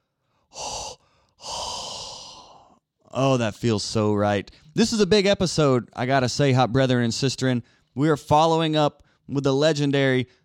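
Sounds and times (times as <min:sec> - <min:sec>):
hot breath exhaled into a microphone: 0:00.3 - 0:02.8
speech: 0:03.1 - 0:10.4.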